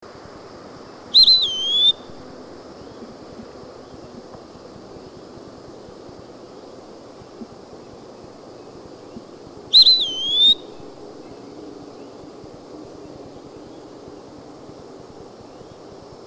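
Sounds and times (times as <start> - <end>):
Eastern wood-pewee calling: 1.1 - 3.1, 8.6 - 11.4.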